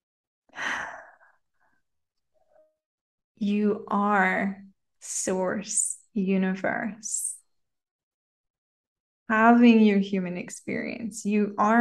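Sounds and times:
deep breathy inhalation during a guided meditation: 0.6s - 1.8s
speech: 3.4s - 7.3s, 9.3s - 11.7s.

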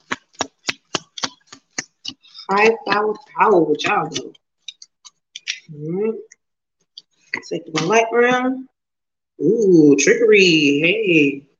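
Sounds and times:
deck of cards being riffle shuffled: 0.0s - 4.8s
speech: 2.5s - 4.4s, 5.7s - 6.3s, 7.4s - 8.7s, 9.4s - 11.5s.

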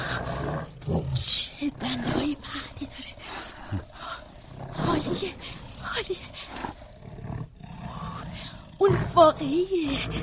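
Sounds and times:
tiger breathing low and rumbling: 0.0s - 10.2s
speech: 9.3s - 10.2s.

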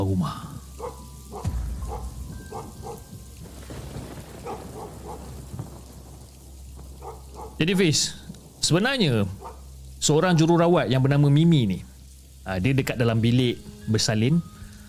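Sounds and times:
speech: 0.0s - 0.5s, 7.6s - 9.4s, 10.0s - 11.9s, 12.5s - 14.5s
steady heavy rain: 0.0s - 14.8s
deep rumble of thunder: 0.6s - 9.5s
dog barking in short bursts: 0.8s - 3.1s, 4.4s - 5.4s, 7.0s - 7.6s, 9.4s - 9.6s.

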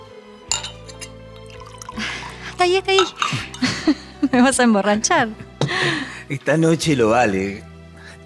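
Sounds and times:
faint glassy clink: 0.5s - 1.1s
wine pouring into a glass: 0.6s - 3.7s
laughter: 2.0s - 4.4s
speech: 2.0s - 7.7s.

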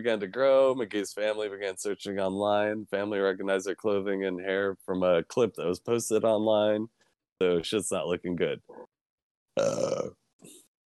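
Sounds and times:
speech: 0.0s - 8.9s, 9.6s - 10.6s
person burping: 9.5s - 10.7s.

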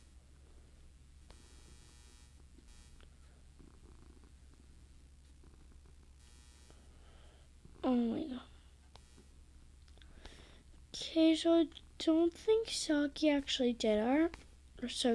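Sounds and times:
cat purring against the microphone: 2.5s - 6.2s, 7.0s - 8.8s
speech: 7.9s - 8.4s, 11.2s - 15.1s.

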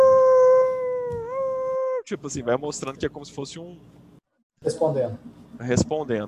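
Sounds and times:
wolf howling: 0.0s - 2.1s
speech: 2.1s - 4.0s, 4.6s - 6.2s.

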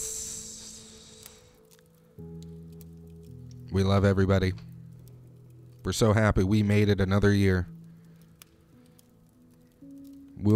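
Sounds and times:
wine poured onto hot sauna rocks sizzling: 0.0s - 10.5s
speech: 3.7s - 4.7s, 5.8s - 7.7s.

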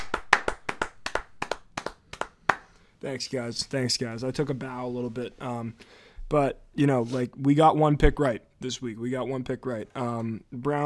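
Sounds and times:
hands clapping: 0.0s - 2.8s
speech: 3.0s - 10.8s.

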